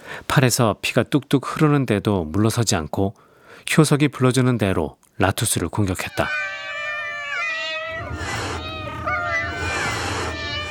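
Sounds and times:
speech: 0:00.4 - 0:06.5
cat yowling during an attack: 0:06.0 - 0:10.6.

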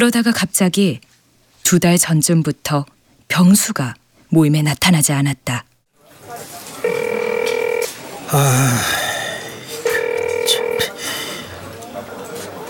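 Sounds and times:
speech: 0:00.0 - 0:01.1, 0:01.7 - 0:05.7, 0:08.3 - 0:09.0
phone ringing with steady electronic tones: 0:06.8 - 0:08.1, 0:09.7 - 0:11.0.

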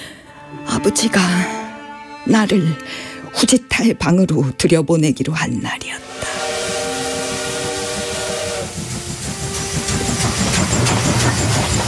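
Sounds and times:
speech: 0:00.8 - 0:01.6, 0:02.2 - 0:06.0
steam train carrying salt sounding its whistle: 0:06.0 - 0:11.8
chuffing steam train machinery: 0:06.2 - 0:11.8.

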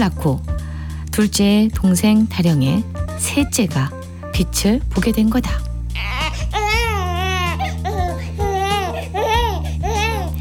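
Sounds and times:
speech: 0:00.0 - 0:00.5, 0:01.2 - 0:06.1
infant wailing: 0:06.0 - 0:10.3.

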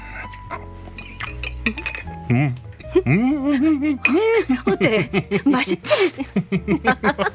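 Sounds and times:
fork tapping a plate spearing herbs: 0:00.9 - 0:02.3
speech: 0:01.7 - 0:07.3
laughter: 0:02.8 - 0:07.3.

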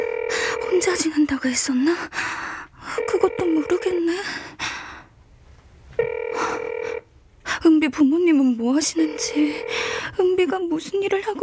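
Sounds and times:
phone ringing with electronic tone: 0:00.0 - 0:01.2, 0:02.8 - 0:04.2, 0:06.0 - 0:07.1, 0:08.8 - 0:10.2
speech: 0:00.8 - 0:04.5, 0:07.6 - 0:11.4.

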